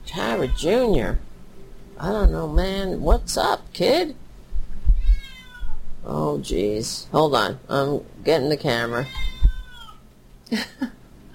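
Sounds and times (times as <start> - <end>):
cat meowing: 0.1 - 1.2, 4.9 - 5.8, 8.9 - 10.0
speech: 0.2 - 1.3, 2.0 - 4.2, 6.0 - 9.3, 10.5 - 11.0.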